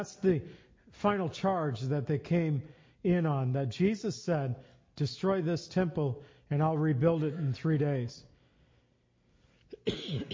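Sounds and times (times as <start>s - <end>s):
speech: 0.0s - 8.3s, 9.8s - 10.3s
harsh cough: 7.2s - 7.8s, 9.7s - 10.3s.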